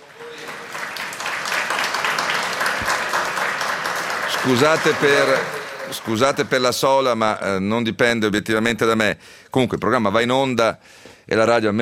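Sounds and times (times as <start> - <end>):
audience at a live event in Turin applauding: 0.0 - 7.1
speech: 4.4 - 11.8.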